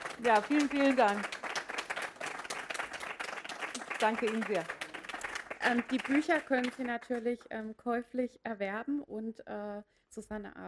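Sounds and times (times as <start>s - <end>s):
audience applause at a book reading: 0.0s - 7.1s
speech: 0.2s - 1.4s, 4.0s - 4.8s, 5.6s - 10.6s.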